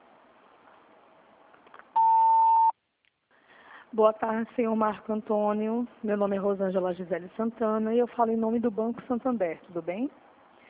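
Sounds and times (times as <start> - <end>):
telephone answering machine beep: 2.0 - 2.7
speech: 3.9 - 10.2.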